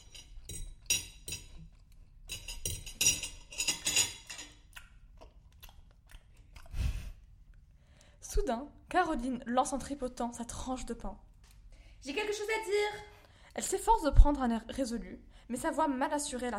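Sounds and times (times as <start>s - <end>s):
forks clinking against plates: 0.0s - 1.6s, 2.3s - 4.6s
wet chewing and crunching of a family eating a meal: 4.6s - 7.8s
speech: 8.4s - 11.3s, 12.0s - 16.5s.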